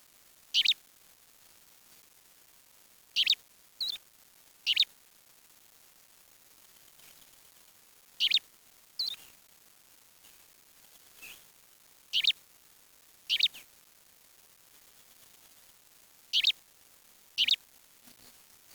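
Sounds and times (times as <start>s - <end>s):
bird chirps: 0.6s - 0.8s, 3.2s - 4.0s, 4.7s - 4.9s, 8.2s - 8.4s, 9.0s - 9.2s, 12.2s - 12.4s, 13.3s - 13.6s, 16.3s - 16.6s, 17.4s - 17.6s.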